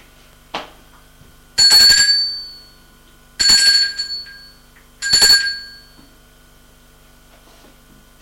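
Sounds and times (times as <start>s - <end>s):
doorbell ringing: 1.6s - 2.8s, 3.4s - 6.1s.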